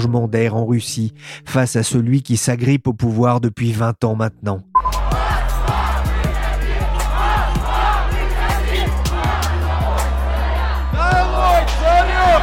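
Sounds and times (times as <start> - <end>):
speech: 0.0 - 4.7
large protest crowd chanting and shouting: 4.8 - 12.4.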